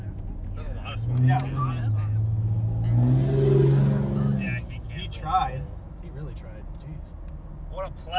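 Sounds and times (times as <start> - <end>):
truck engine revving: 0.9 - 4.7
speech: 1.1 - 2.0.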